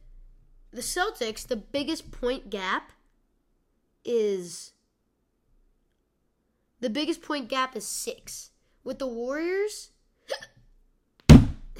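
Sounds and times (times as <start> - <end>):
speech: 0.8 - 3.0, 4.0 - 4.8, 6.8 - 10.5
single sharp loud hiccup: 10.3 - 10.6.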